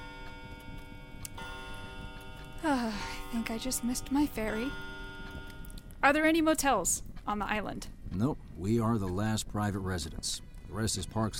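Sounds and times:
clock chiming four o'clock with sustained ringing tone: 0:00.0 - 0:07.0
sharp ticking clicks of clock: 0:00.0 - 0:09.7
speech: 0:02.6 - 0:04.9, 0:06.0 - 0:11.3.

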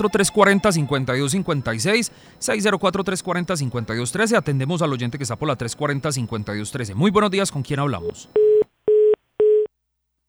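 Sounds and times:
phone line busy tone beeps after a caller hangs up: 0:00.0 - 0:02.2, 0:07.9 - 0:09.7
speech: 0:00.0 - 0:08.5.

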